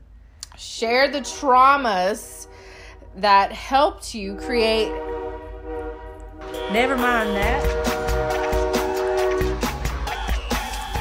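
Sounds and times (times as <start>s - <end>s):
speech: 0.6s - 2.5s, 3.2s - 5.1s, 6.7s - 7.8s
train horn blaring in a steady chord: 1.0s - 10.4s
rhythmic clack and rumble of a rolling train: 4.3s - 10.9s.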